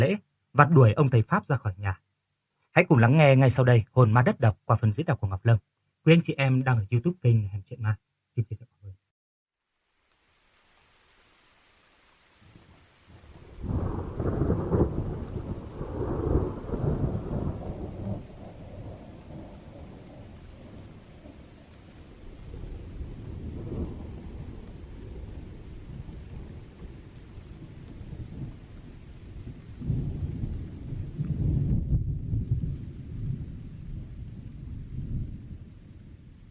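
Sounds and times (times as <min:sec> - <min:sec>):
steady rain falling: 0:00.0 - 0:08.5, 0:09.6 - 0:36.4
speech: 0:00.1 - 0:02.0, 0:02.8 - 0:09.0
low thunder rumbling: 0:12.4 - 0:36.4.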